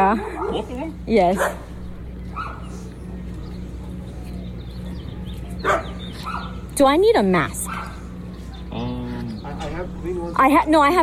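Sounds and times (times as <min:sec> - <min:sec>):
steady low electrical hum: 0:00.0 - 0:11.0
speech: 0:00.1 - 0:01.7, 0:06.8 - 0:07.6, 0:09.8 - 0:11.0
dog barking: 0:01.3 - 0:01.7, 0:02.3 - 0:02.7, 0:05.6 - 0:06.6, 0:07.6 - 0:08.0.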